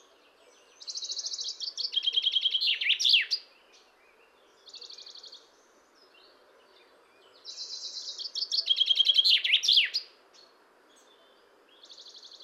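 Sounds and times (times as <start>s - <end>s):
common chaffinch Fringilla coelebs song: 0.0s - 12.4s.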